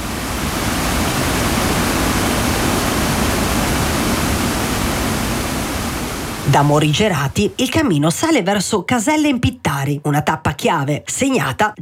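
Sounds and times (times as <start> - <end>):
water flowing over small stream cascades: 0.0 - 7.7
speech: 6.5 - 11.8.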